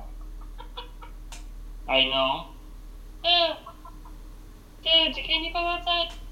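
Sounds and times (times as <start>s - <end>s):
chicken squawking while being fed: 0.0s - 1.3s, 3.2s - 4.2s
faint chicken clucks: 0.0s - 1.5s, 3.2s - 4.3s
speech: 1.9s - 2.5s, 3.2s - 3.7s, 4.8s - 6.2s.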